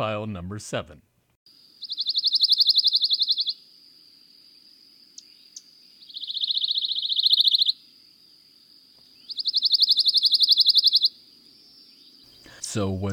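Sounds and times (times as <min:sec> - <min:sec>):
speech: 0:00.0 - 0:01.1, 0:12.7 - 0:13.1
pine warbler dry trill song: 0:01.7 - 0:03.6, 0:05.1 - 0:07.8, 0:09.0 - 0:13.1.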